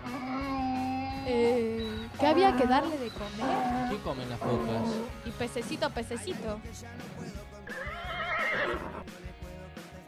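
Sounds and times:
horse neighing: 0:00.0 - 0:05.2, 0:07.6 - 0:09.1
speech: 0:01.3 - 0:07.4.

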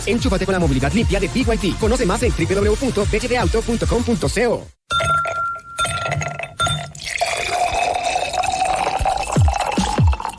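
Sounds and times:
speech: 0:00.0 - 0:05.1
ice cubes clinking in a glass: 0:04.9 - 0:10.3
Mr. T drink pouring over ice into a glass: 0:05.0 - 0:10.3.

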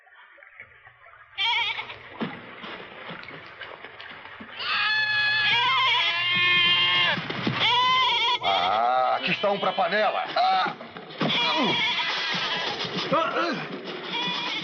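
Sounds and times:
goats bleating aboard a ship: 0:01.4 - 0:02.1, 0:04.6 - 0:14.6
speech: 0:09.4 - 0:10.8, 0:13.1 - 0:13.8.

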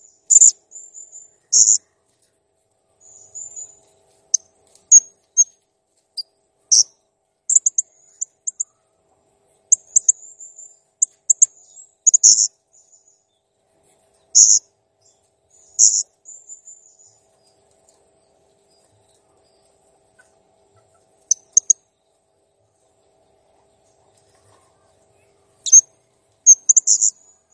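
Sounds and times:
faint steady hum: 0:00.0 - 0:27.5
blue-crowned hanging parrot chirps and squeaky trills: 0:00.3 - 0:01.8, 0:06.2 - 0:06.9, 0:07.5 - 0:08.8, 0:09.7 - 0:12.5, 0:14.4 - 0:14.6, 0:15.6 - 0:16.7, 0:20.2 - 0:21.8, 0:25.6 - 0:25.9, 0:26.5 - 0:27.2.

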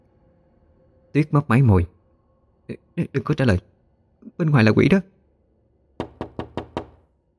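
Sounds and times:
speech: 0:01.2 - 0:02.0, 0:02.7 - 0:03.7, 0:04.3 - 0:05.1
heavy sharp bangs on a door: 0:06.0 - 0:07.0.

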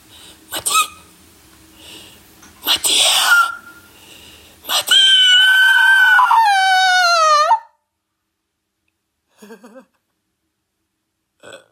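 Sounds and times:
person screaming: 0:04.7 - 0:07.8.

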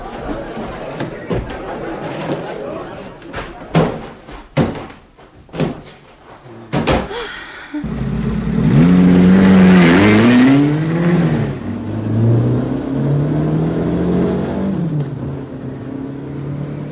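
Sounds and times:
laughter: 0:00.0 - 0:04.1
car engine accelerating as the car drives off: 0:07.8 - 0:16.9.

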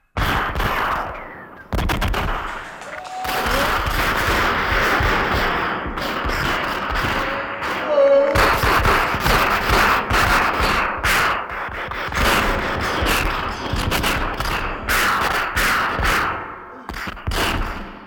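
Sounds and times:
machine-gun fire at a house surrounded by police: 0:00.0 - 0:18.0
sharp cracking gunshots at a house surrounded by police: 0:00.0 - 0:18.0.

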